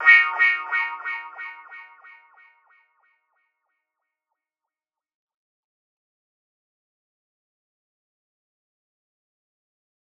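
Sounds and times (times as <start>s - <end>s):
wah guitar in D sharp: 0.0s - 2.3s.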